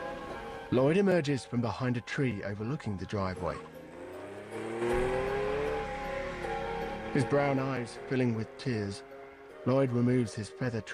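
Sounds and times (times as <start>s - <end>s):
speech: 0.7s - 3.8s, 7.2s - 10.9s
car engine revving as the car reverses down a driveway: 3.3s - 9.7s
car gear whine: 3.5s - 9.5s.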